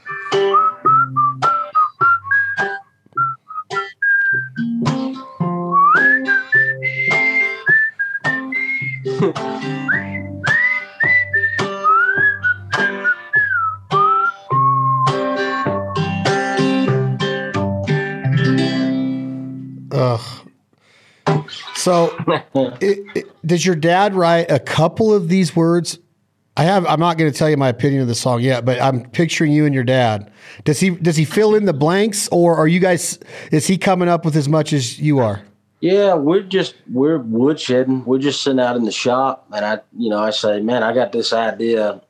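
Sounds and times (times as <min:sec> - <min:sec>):
rhythmic backing music: 0:00.0 - 0:02.8, 0:03.7 - 0:19.1, 0:21.2 - 0:23.4
person whistling a bright wavering melody: 0:00.0 - 0:04.9, 0:05.7 - 0:16.2
speech: 0:22.6 - 0:26.0, 0:26.6 - 0:42.0.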